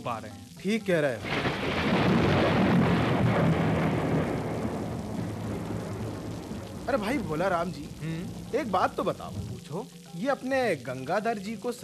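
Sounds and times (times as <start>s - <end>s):
speech: 0.0s - 2.1s, 6.9s - 11.8s
heavy rain pouring in a dense steady roar: 0.0s - 11.8s
deep low rumble of thunder: 1.2s - 9.6s.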